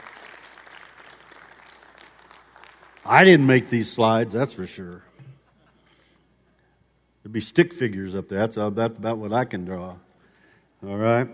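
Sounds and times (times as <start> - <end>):
audience applauding: 0.0 - 4.1
speech: 3.1 - 5.1, 7.3 - 10.0, 10.8 - 11.3.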